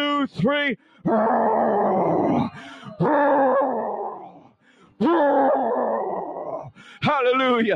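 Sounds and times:
speech: 0:00.2 - 0:04.1, 0:05.0 - 0:06.0, 0:07.0 - 0:07.7
church audience roaring loudly in imitation of a lion: 0:01.1 - 0:04.4, 0:05.0 - 0:06.7.

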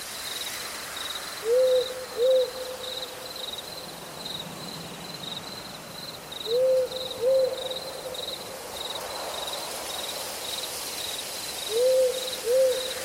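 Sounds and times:
crickets chirping in a forest at night: 0:00.0 - 0:13.0
soft hiss: 0:00.0 - 0:13.0
owl hooting in a forest at night: 0:01.4 - 0:02.8, 0:06.5 - 0:07.7, 0:11.7 - 0:13.0.

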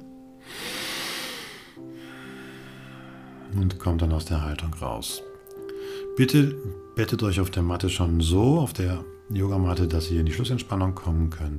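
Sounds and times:
deep breath during a yoga session: 0:00.4 - 0:03.5
speech: 0:03.5 - 0:05.3, 0:06.2 - 0:11.5.

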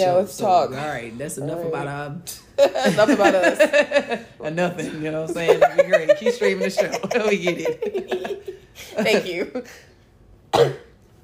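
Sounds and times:
speech: 0:00.0 - 0:09.9, 0:10.5 - 0:10.8
laughter: 0:02.6 - 0:04.4, 0:05.2 - 0:09.8
cough: 0:10.5 - 0:11.0.

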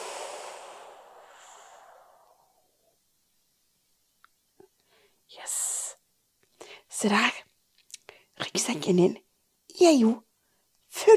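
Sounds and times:
long soft exhale of breath: 0:00.0 - 0:02.7
faint small clicks: 0:04.2 - 0:04.9, 0:07.7 - 0:08.2
speech: 0:07.0 - 0:07.4, 0:08.6 - 0:10.2.

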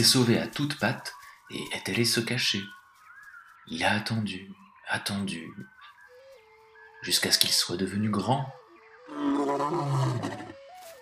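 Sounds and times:
speech: 0:00.0 - 0:02.8, 0:03.7 - 0:05.8, 0:07.0 - 0:10.4
lion roaring: 0:09.1 - 0:10.6.

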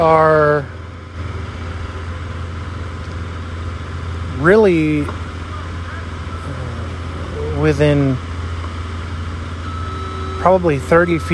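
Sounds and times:
speech: 0:00.0 - 0:00.8, 0:04.4 - 0:05.2, 0:07.6 - 0:08.3, 0:10.4 - 0:11.3
idling truck diesel engine: 0:00.0 - 0:11.3
truck reversing alarm high-pitched tone: 0:05.9 - 0:08.4, 0:09.3 - 0:11.3.

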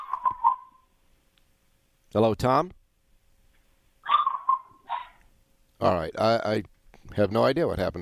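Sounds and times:
speech: 0:02.1 - 0:02.8, 0:05.8 - 0:08.0
dog barking: 0:04.0 - 0:05.2.

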